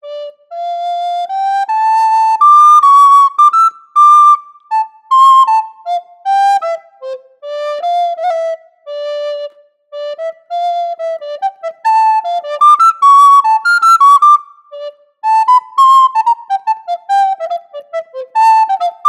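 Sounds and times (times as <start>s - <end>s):
soprano recorder: 0.0s - 19.0s.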